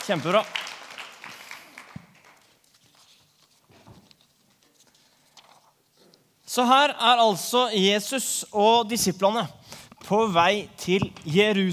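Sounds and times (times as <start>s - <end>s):
small group clapping: 0.0s - 2.6s
speech: 0.1s - 0.6s, 6.6s - 11.7s.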